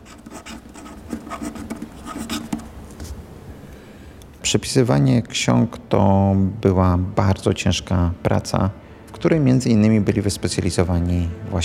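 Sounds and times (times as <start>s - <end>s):
pen scratching across a sheet of paper on a wooden desk in a monastery scriptorium: 0.0s - 2.7s
faint tonal hum: 0.0s - 11.6s
speech: 4.5s - 11.6s.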